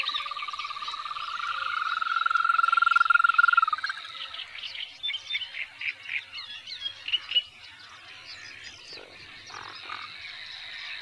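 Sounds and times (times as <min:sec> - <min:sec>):
European green toad giving pulsed croaks and softer calls: 0:00.0 - 0:04.4, 0:09.0 - 0:10.2.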